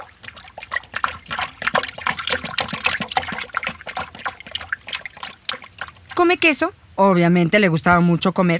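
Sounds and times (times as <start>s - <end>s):
water pouring and trickling: 0.0s - 7.0s
speech: 6.2s - 8.5s.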